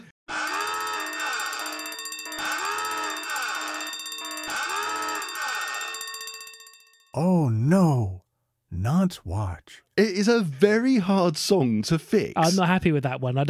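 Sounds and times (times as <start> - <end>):
alarm bell ringing: 0.3 - 7.2
speech: 7.2 - 13.4.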